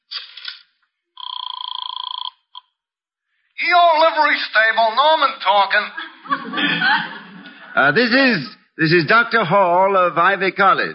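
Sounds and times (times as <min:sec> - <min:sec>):
telephone trilling ring: 0:01.2 - 0:02.7
speech: 0:03.6 - 0:07.2, 0:07.8 - 0:10.9
laughter: 0:05.0 - 0:08.4.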